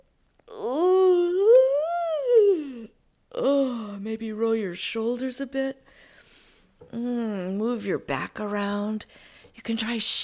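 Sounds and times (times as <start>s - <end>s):
long drawn-out vocal yawn with a stretch: 0.5s - 4.0s
speech: 4.1s - 5.8s, 6.9s - 10.2s.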